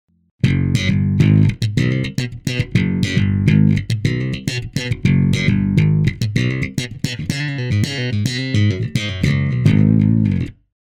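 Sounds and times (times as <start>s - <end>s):
compressed bass slap: 0.4s - 10.6s.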